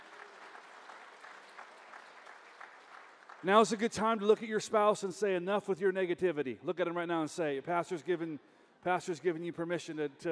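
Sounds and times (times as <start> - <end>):
congregation applauding in a reverberant hall: 0.0 - 4.1
speech: 3.4 - 10.2.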